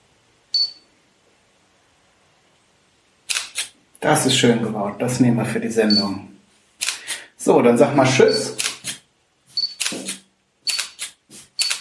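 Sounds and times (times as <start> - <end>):
camera shutter click taking photos: 3.3 - 3.7, 6.8 - 7.2, 8.6 - 9.0, 9.7 - 11.7
speech: 4.0 - 6.3, 7.4 - 8.6.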